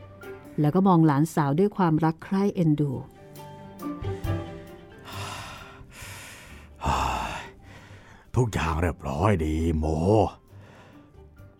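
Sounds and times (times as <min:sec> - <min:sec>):
speech: 0:00.6 - 0:03.2, 0:08.4 - 0:10.4
old man breathing heavily with raspy gasps: 0:04.0 - 0:08.3, 0:10.5 - 0:11.2.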